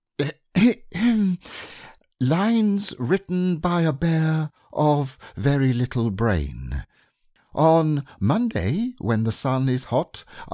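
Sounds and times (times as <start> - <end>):
person coughing: 0.2 - 1.4
speech: 0.2 - 1.6, 2.2 - 6.9, 7.6 - 10.5.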